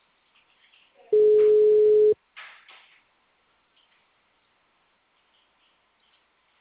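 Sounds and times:
telephone ringback tone on an outgoing call: 1.2 - 2.2.

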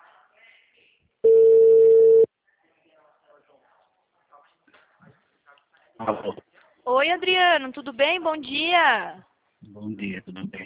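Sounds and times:
telephone ringback tone while a call is placed: 1.2 - 2.3
speech: 6.0 - 10.6.

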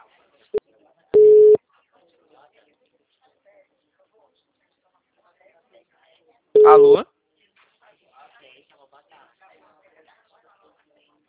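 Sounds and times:
telephone busy tone after a dropped call: 1.2 - 1.6, 6.6 - 7.0
speech: 6.6 - 7.1.

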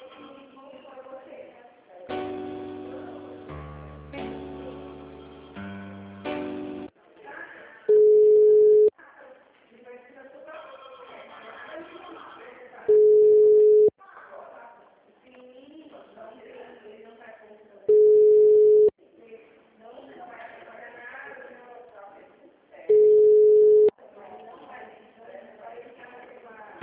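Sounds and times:
telephone ringback tone during transfer to an office extension: 7.9 - 8.9, 12.9 - 13.9, 17.9 - 18.9, 22.9 - 23.9.

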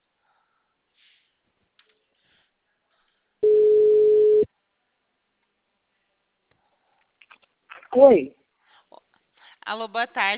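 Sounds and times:
telephone tone after a dropped call: 3.4 - 4.5
speech: 8.0 - 8.4, 9.7 - 10.3.

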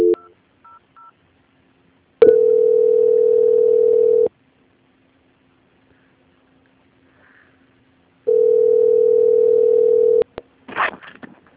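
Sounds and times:
long steady telephone ringing tones on a bank's line during call transfer: 0.0 - 0.3, 2.2 - 4.3, 8.3 - 10.3.

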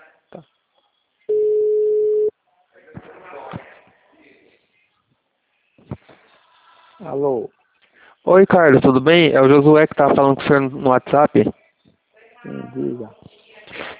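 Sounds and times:
speech: 0.3 - 0.6, 7.0 - 7.6, 8.3 - 11.6, 12.4 - 13.2
telephone ringback tone of an outgoing call: 1.3 - 2.3.

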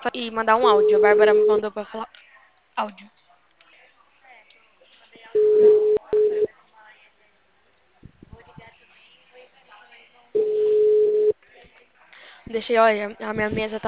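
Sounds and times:
speech: 0.0 - 2.2, 2.8 - 3.2, 12.5 - 13.8
telephone ringback tone on an outgoing call: 0.7 - 1.6, 5.4 - 6.5, 10.4 - 11.3.

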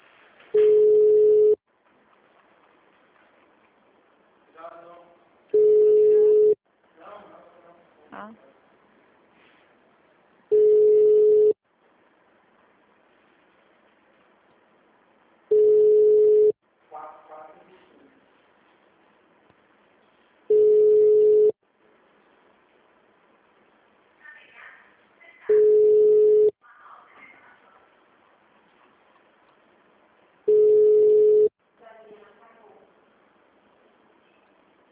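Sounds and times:
telephone ringback tone as a call is placed on air: 0.6 - 1.6, 5.6 - 6.6, 10.5 - 11.6, 15.5 - 16.6, 20.5 - 21.6, 25.5 - 26.5, 30.5 - 31.5.

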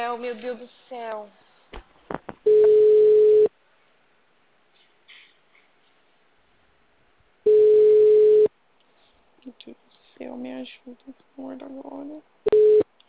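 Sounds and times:
speech: 0.0 - 1.9, 9.4 - 12.7
phone busy signal beeps after a dropped call: 2.5 - 3.5, 7.5 - 8.5, 12.5 - 12.9.

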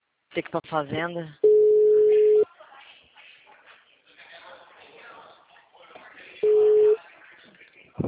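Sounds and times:
speech: 0.4 - 1.4
telephone tone beeps after a dropped call: 1.4 - 2.4, 6.4 - 7.0.

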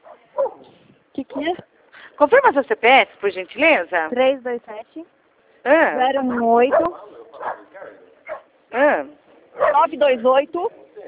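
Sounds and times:
dog barking and yelping through a phone line: 0.0 - 0.8, 6.3 - 8.5, 9.6 - 9.9
speech: 1.4 - 8.0, 8.7 - 10.8.

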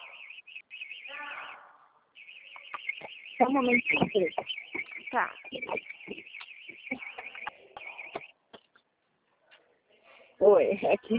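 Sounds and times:
car alarm warbling electronic siren: 0.0 - 8.4
speech: 3.4 - 6.2, 10.4 - 11.1.

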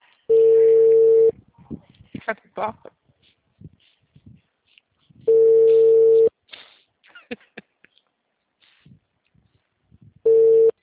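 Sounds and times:
ringback tone of an outgoing telephone call: 0.3 - 1.3, 5.3 - 6.3, 10.3 - 10.8
speech: 2.3 - 3.0.

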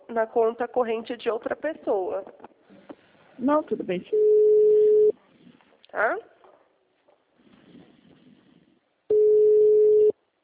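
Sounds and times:
speech: 0.2 - 2.6, 3.4 - 4.6, 5.9 - 6.3
telephone ringback tone while a call connects: 4.1 - 5.1, 9.1 - 10.1.

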